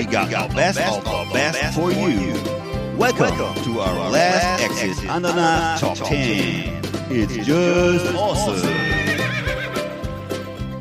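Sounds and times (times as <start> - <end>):
speech: 0.0 - 9.0
horse neighing with a quavering whinny: 8.5 - 10.0.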